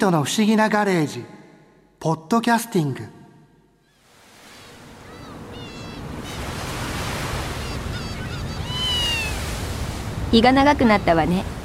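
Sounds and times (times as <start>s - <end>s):
speech: 0.0s - 1.4s, 2.0s - 3.2s, 10.3s - 11.6s
thin high bird-like cries: 3.8s - 9.6s
wind at the seaside: 3.8s - 11.6s
ocean surf at the seaside: 3.9s - 11.6s.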